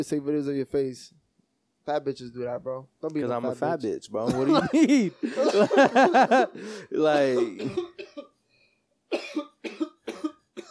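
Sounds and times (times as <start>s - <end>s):
speech: 0.0s - 1.2s, 1.8s - 8.0s
laughter: 4.3s - 7.6s
person coughing with harsh hacking bursts: 7.3s - 8.3s, 9.1s - 10.6s.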